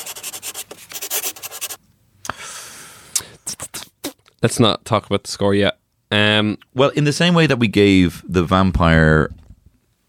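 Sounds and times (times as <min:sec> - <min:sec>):
pen scratching as someone writes something down: 0:00.0 - 0:01.8
speech: 0:04.4 - 0:09.4.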